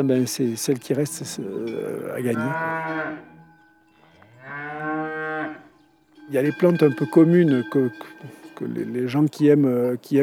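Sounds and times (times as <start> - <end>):
speech: 0.0 - 3.4, 6.3 - 10.2
cows mooing at a cow fight in Valais, Switzerland: 1.0 - 9.0.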